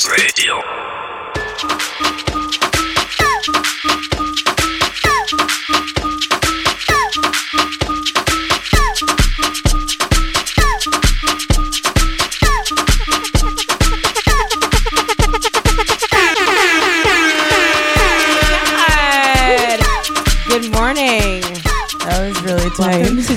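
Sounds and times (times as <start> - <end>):
speech: 0.1 - 1.1
thumping steady beat: 1.5 - 23.3
air horn blasts: 16.1 - 21.2.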